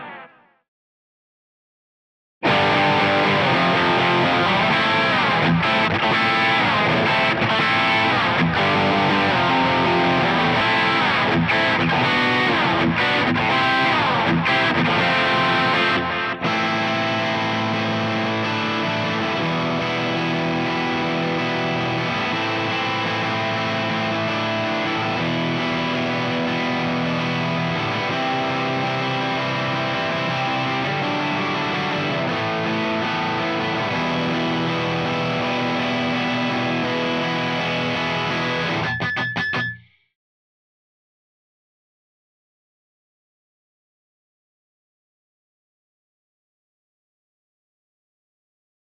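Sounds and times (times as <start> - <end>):
bass guitar: 2.4 - 39.8.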